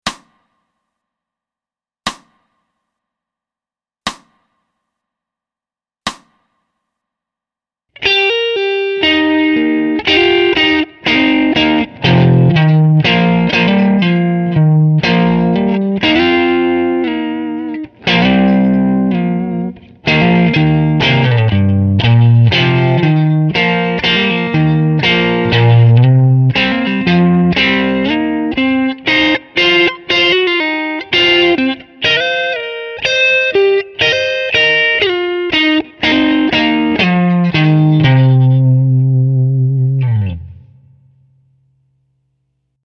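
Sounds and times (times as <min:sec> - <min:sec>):
C minor pentatonic riff: 0:08.0 - 0:41.1.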